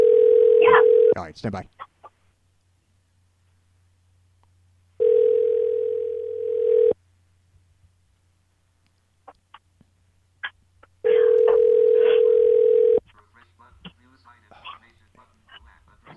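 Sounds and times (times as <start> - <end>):
telephone ringback tone heard through the handset: 0.0 - 1.2, 5.0 - 7.0, 11.0 - 13.0
speech: 1.2 - 1.8.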